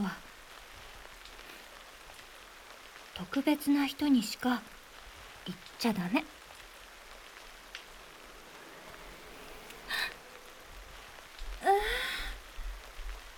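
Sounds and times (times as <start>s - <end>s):
steady rain pattering: 0.0s - 13.3s
speech: 3.2s - 4.8s, 5.5s - 6.4s
strong wind gust during rain: 6.0s - 13.3s.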